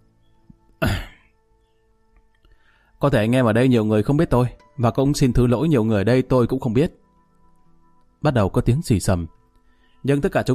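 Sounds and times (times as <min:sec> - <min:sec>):
man clearing his throat before addressing a gathering: 0:00.8 - 0:01.3
speech: 0:03.0 - 0:07.0, 0:08.2 - 0:09.4, 0:10.0 - 0:10.5.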